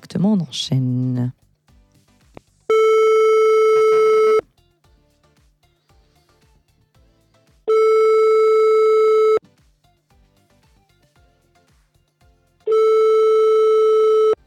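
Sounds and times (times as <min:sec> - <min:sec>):
speech: 0:00.1 - 0:01.4
steady mid-pitched telephone line tone: 0:02.7 - 0:04.4, 0:07.7 - 0:09.4, 0:12.7 - 0:14.4.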